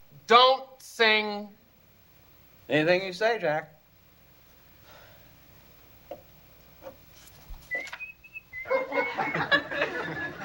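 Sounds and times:
speech: 0.3s - 1.6s, 2.7s - 3.8s
person whistling a tune: 7.7s - 9.4s
audience laughing: 8.6s - 10.4s.

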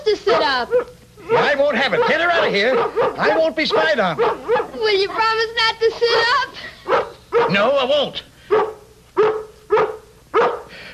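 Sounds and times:
faint steady hum: 0.0s - 10.9s
dog barking: 0.2s - 4.8s, 5.9s - 7.7s, 8.5s - 10.7s
speech: 0.3s - 8.6s.

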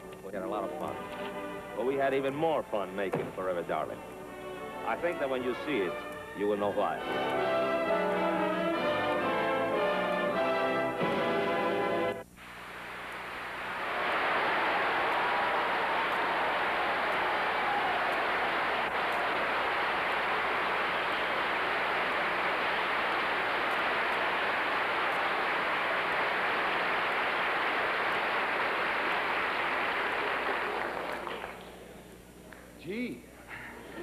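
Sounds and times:
speech: 0.2s - 4.2s, 4.8s - 7.5s
large audience applauding: 4.8s - 12.2s, 12.8s - 32.0s.

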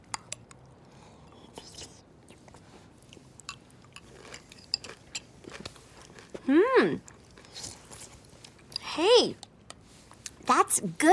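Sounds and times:
chewing chili with crunchy corn chips: 0.5s - 8.8s
speech: 6.5s - 7.1s, 10.6s - 11.1s.

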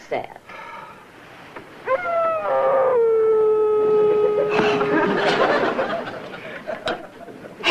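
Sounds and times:
dog howling downstairs: 1.8s - 5.6s
laughter: 4.1s - 7.6s.

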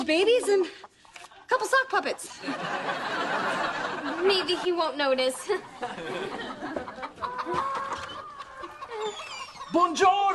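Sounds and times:
speech: 0.1s - 0.9s, 1.5s - 7.8s, 9.0s - 10.3s
laughter: 2.3s - 10.1s
several chickens clucking and squawking: 6.2s - 9.8s.

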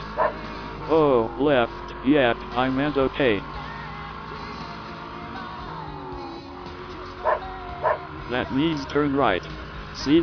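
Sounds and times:
steady low engine-like rumble: 0.0s - 10.2s
dog barking: 0.2s - 0.4s, 7.2s - 8.0s
speech: 0.9s - 3.5s, 8.4s - 10.2s.

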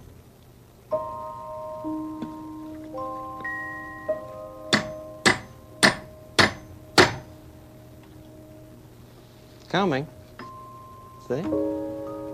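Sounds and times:
sustained musical tones: 0.9s - 12.3s
hammer blows on wood as pieces of wood are hammered together: 4.7s - 7.3s
speech: 9.7s - 10.2s, 11.3s - 11.9s.

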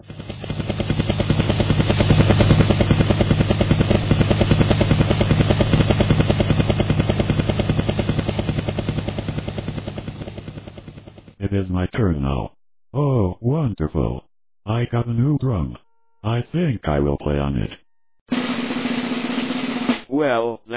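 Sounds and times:
helicopter rotor chopping with low engine drone: 0.0s - 11.4s, 18.3s - 20.1s
speech: 11.9s - 17.8s, 20.1s - 20.7s.

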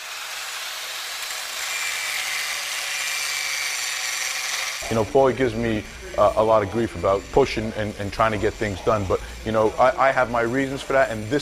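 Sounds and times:
grinder cutting down a metal edge inside a motorcycle primary cover: 0.0s - 11.3s
speech: 4.8s - 11.3s.

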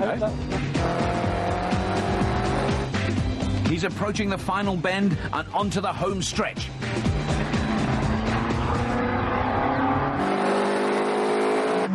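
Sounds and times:
speech: 0.1s - 1.0s, 3.7s - 7.2s
race car engine roaring through tight corners with oversteer: 0.5s - 3.0s, 7.0s - 11.9s
race car tire squeal: 7.4s - 11.9s.

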